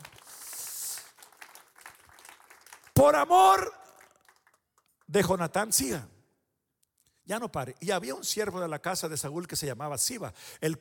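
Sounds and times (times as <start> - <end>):
audience applauding: 0.0 - 3.2, 3.8 - 4.6
speech: 3.0 - 3.8, 5.1 - 6.1, 7.3 - 10.8.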